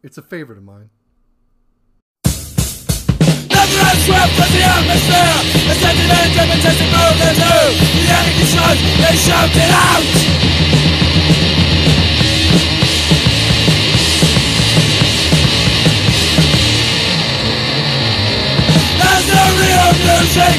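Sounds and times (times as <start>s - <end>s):
speech: 0.0s - 1.0s, 3.9s - 10.4s, 12.5s - 12.8s, 19.2s - 20.5s
pounding drums: 2.2s - 17.2s, 18.6s - 20.5s
loud dense d-beat hardcore punk song: 2.2s - 20.5s
heavily distorted guitars: 2.3s - 20.5s
harsh screamed vocals: 3.5s - 10.3s, 18.7s - 20.5s.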